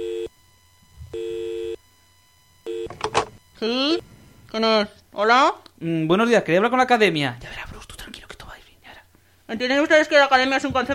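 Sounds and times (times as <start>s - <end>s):
telephone line tone beeps during a call: 0.0s - 4.4s
speech: 3.6s - 7.6s, 9.5s - 10.9s.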